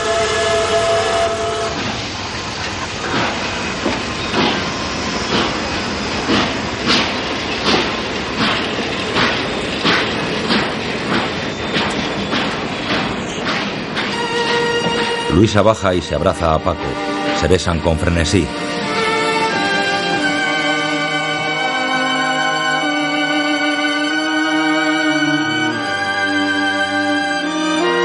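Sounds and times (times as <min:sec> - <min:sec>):
train starting to move: 0:00.0 - 0:28.0
clanks and rail clicks: 0:01.7 - 0:17.8
speech: 0:15.4 - 0:18.7.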